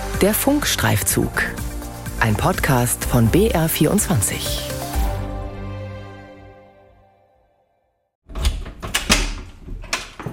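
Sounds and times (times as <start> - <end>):
speech: 0.2 - 1.6, 2.2 - 4.7
sharp metallic clicks and clunks of a farmer unlocking a milking parlour door: 8.3 - 10.3.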